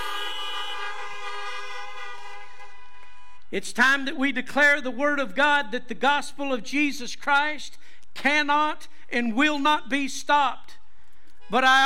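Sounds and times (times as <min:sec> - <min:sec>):
car horns honking from people gathered in their cars: 0:00.0 - 0:03.5
speech: 0:03.5 - 0:10.7, 0:11.5 - 0:11.8.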